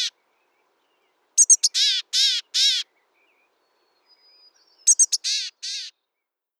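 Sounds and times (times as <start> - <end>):
grey-headed chickadee giving chick-a-dee calls: 1.4 - 2.9, 4.1 - 5.9.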